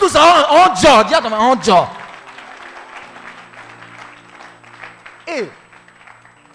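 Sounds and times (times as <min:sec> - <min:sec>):
speech: 0:00.1 - 0:02.0, 0:05.3 - 0:05.6
congregation applauding: 0:00.9 - 0:06.5
sustained low musical tones: 0:01.2 - 0:06.5.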